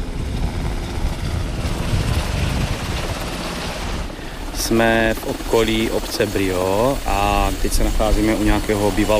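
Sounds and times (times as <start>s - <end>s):
Black Hawk firefighting helicopters with full water buckets lifting off: 0.0s - 9.1s
gusty wind buffeting: 0.0s - 9.1s
rushing water spray from helicopter buckets: 3.4s - 9.1s
speech: 4.7s - 9.1s.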